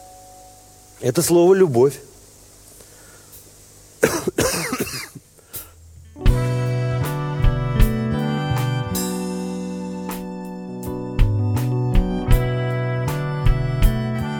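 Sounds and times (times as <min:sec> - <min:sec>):
speech: 0:01.0 - 0:02.1
short rough apologetic throat-clearing coughs: 0:04.0 - 0:05.2
tonal music with sustained notes and a light beat: 0:06.1 - 0:14.3.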